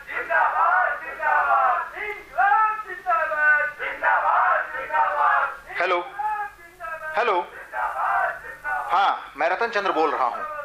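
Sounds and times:
large angry mob shouting as it advances to loot grain: 0:00.1 - 0:05.7, 0:07.5 - 0:08.9
speech: 0:09.5 - 0:10.5.

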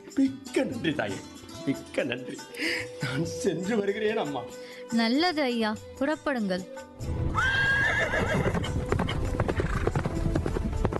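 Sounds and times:
speech: 0:00.1 - 0:07.5
horse whinnying: 0:07.3 - 0:10.0
horse hooves clip-clopping: 0:08.1 - 0:10.9.

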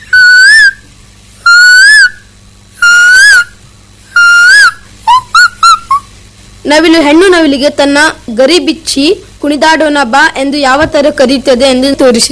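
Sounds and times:
person whistling in imitation of a nightingale's song: 0:00.0 - 0:00.8, 0:01.4 - 0:02.2, 0:02.8 - 0:03.6, 0:04.2 - 0:06.1
speech: 0:06.6 - 0:12.3.

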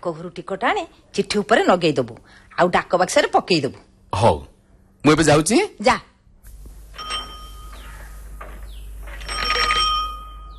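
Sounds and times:
speech: 0:00.0 - 0:06.1
postman's bicycle bell ringing: 0:06.9 - 0:08.0, 0:09.2 - 0:10.5.

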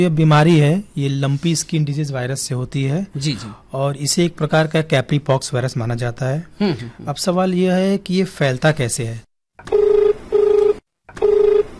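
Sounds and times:
speech: 0:00.0 - 0:09.8
telephone ringing for an incoming call: 0:09.7 - 0:11.7.

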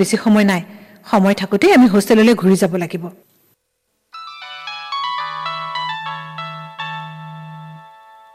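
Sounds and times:
speech: 0:00.0 - 0:03.3
melodic ringtone of an outgoing phone call: 0:04.2 - 0:08.3.

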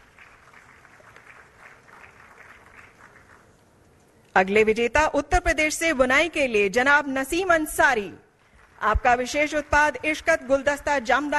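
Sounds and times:
audience applauding at an award ceremony for weavers: 0:00.0 - 0:03.6
speech: 0:04.4 - 0:08.2, 0:08.8 - 0:11.3.

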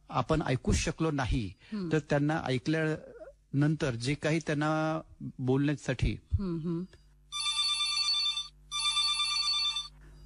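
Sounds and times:
speech: 0:00.1 - 0:07.0
electronic telephone ringtone for an incoming call: 0:07.3 - 0:10.2.

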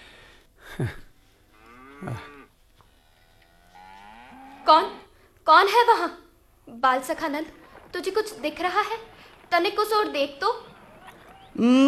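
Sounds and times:
speech: 0:00.8 - 0:01.0, 0:02.0 - 0:02.4, 0:04.7 - 0:10.7, 0:11.6 - 0:11.8
cows mooing near a village: 0:01.6 - 0:05.0, 0:07.5 - 0:11.8.

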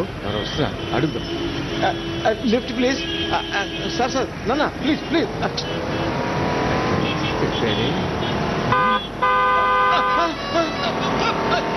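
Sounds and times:
speech: 0:00.0 - 0:06.1, 0:07.6 - 0:09.6
engine and road noise: 0:00.0 - 0:11.7
car horn honking: 0:00.5 - 0:04.2, 0:07.0 - 0:11.5.

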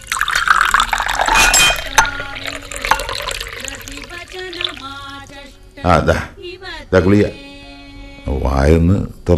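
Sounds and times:
water pouring into a glass: 0:00.0 - 0:05.2
speech: 0:05.8 - 0:06.3, 0:06.9 - 0:07.4, 0:08.2 - 0:09.3.

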